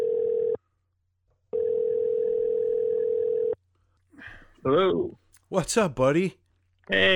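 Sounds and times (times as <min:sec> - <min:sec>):
phone ringback tone on an outgoing call: 0:00.0 - 0:00.6, 0:01.6 - 0:03.6
speech: 0:04.6 - 0:07.1.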